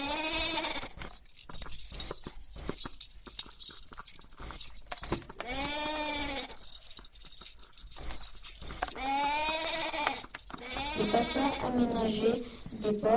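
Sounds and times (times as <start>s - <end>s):
sheep bleating: 0.0s - 0.9s, 5.4s - 6.6s, 9.0s - 12.0s
farmyard noise: 0.0s - 1.0s, 5.2s - 6.7s, 8.6s - 13.1s
speech: 11.3s - 13.1s.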